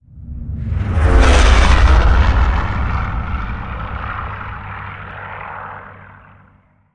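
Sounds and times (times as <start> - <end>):
plane engine: 0.0 - 6.9
bombs exploding: 1.0 - 4.6.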